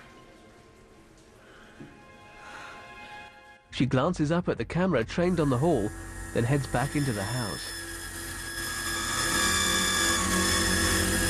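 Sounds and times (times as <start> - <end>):
speech: 3.8 - 7.8
drill bit boring into metal combination lock: 5.1 - 11.2.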